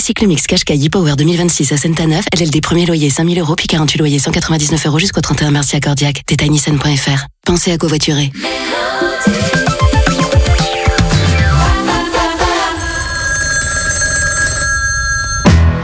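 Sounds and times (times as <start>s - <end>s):
speech: 0.0s - 9.6s
telephone ringing with warbling electronic tones for a wake-up call: 9.8s - 15.7s.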